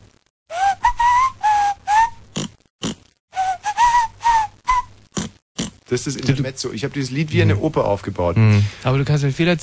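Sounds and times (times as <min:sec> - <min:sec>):
person whistling a short tune: 0:00.5 - 0:02.2, 0:03.4 - 0:04.9
speech: 0:05.9 - 0:09.6.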